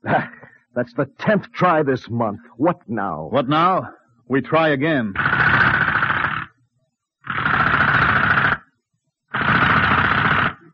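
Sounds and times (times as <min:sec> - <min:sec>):
speech: 0:00.0 - 0:05.5
drill whirring against a basalt lava wall: 0:05.2 - 0:06.5, 0:07.3 - 0:08.6, 0:09.3 - 0:10.7.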